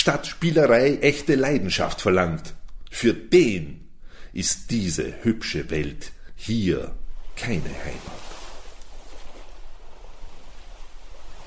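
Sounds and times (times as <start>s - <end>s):
speech: 0.0s - 3.8s, 4.4s - 8.3s
continuous ocean surf: 7.0s - 11.4s
steady wind rushing over the ocean: 7.0s - 11.4s.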